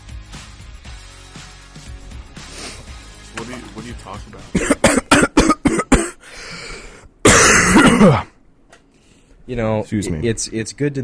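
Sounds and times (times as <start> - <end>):
speech: 3.4 - 5.0, 8.0 - 8.3, 9.5 - 11.0
harsh throat-clearing hack: 4.5 - 6.2, 7.3 - 8.3
person coughing into the microphone: 4.6 - 6.2, 7.2 - 8.4.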